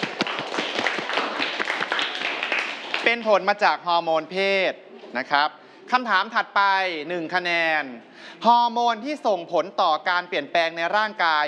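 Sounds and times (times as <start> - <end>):
students clapping in a classroom after a correct quiz answer: 0.0 - 3.5
speech: 3.1 - 11.4.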